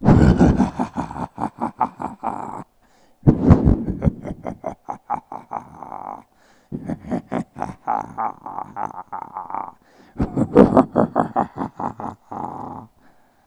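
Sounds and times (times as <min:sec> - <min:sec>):
beast laughing: 0:00.0 - 0:02.7, 0:03.3 - 0:13.0.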